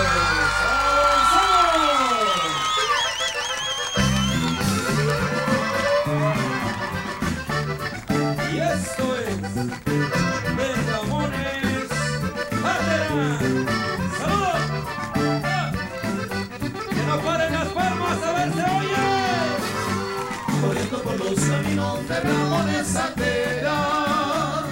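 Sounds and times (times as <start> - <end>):
concert crowd cheering and whooping at a live show in Phoenix, Arizona: 0.0 - 8.1, 18.8 - 21.1
band's music at a live show: 0.0 - 24.7.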